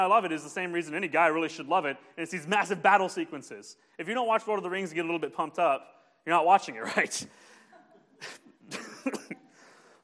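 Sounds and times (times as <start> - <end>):
speech: 0.0 - 7.5
person coughing: 8.2 - 10.0.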